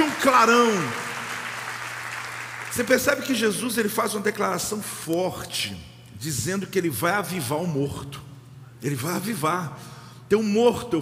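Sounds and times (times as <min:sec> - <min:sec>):
crowd clapping in a large room: 0:00.0 - 0:03.5
low electrical hum: 0:00.0 - 0:11.0
speech: 0:00.2 - 0:01.0, 0:02.8 - 0:11.0.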